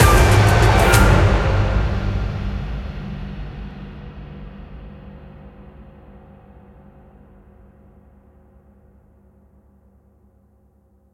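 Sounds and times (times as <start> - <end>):
big win end jingle: 0.0 - 2.4.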